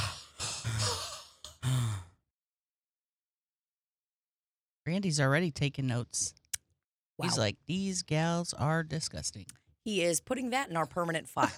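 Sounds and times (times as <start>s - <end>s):
voice imitating heavy breathing: 0.0s - 1.4s
speech: 4.9s - 6.4s, 7.2s - 11.5s.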